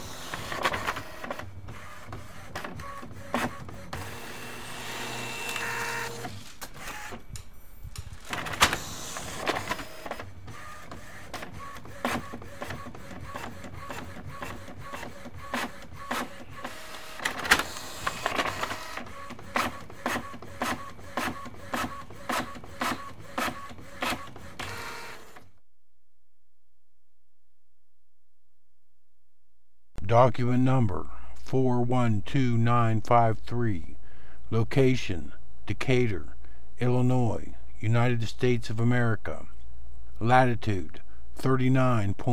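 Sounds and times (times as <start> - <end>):
printer printing pages: 0.0 - 25.6
speech: 30.1 - 33.9, 34.5 - 39.4, 40.2 - 42.3.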